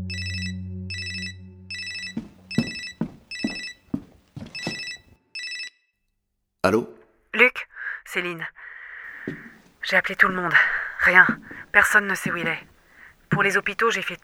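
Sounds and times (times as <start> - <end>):
newly installed living-room telephone ringing: 0.2 - 5.7
soft thumping hits: 2.1 - 4.8, 9.2 - 12.7
speech: 6.6 - 8.6, 9.2 - 12.7, 13.3 - 14.2.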